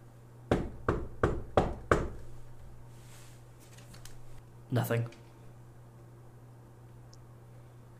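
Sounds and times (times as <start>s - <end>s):
knocking on a door: 0.5s - 2.2s
speech: 4.7s - 5.2s.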